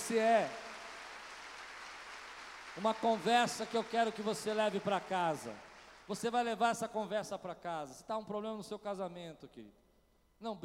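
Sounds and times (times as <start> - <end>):
audience applauding the Lord: 0.0 - 6.1
speech: 0.1 - 0.6, 2.8 - 9.8, 10.4 - 10.6.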